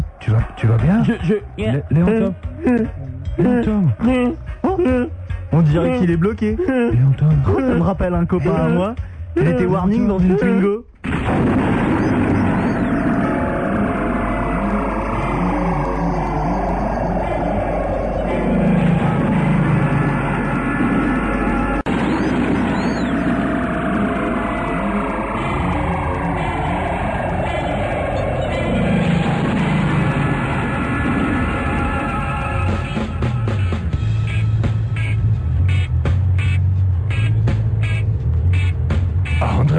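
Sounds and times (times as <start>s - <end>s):
speech: 0.3s - 11.8s
car engine driving along a road: 12.6s - 39.7s.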